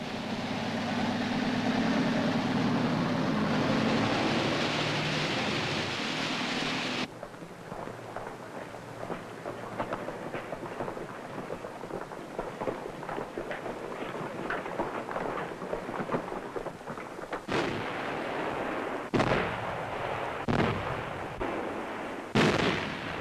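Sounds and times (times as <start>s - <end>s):
rumbling artillery fire: 0.0s - 23.1s
artillery blasts during an advance along a lake shore: 14.5s - 23.1s.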